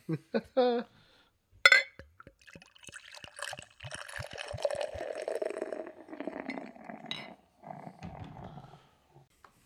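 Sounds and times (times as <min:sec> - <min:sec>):
speech: 0:00.1 - 0:00.9
sharp clink of a glass: 0:01.7 - 0:05.1, 0:06.5 - 0:07.4
beer pouring into a glass: 0:02.2 - 0:07.4.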